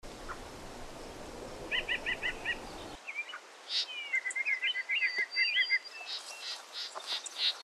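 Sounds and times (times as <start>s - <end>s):
yellow-breasted chat calling: 1.6s - 7.6s.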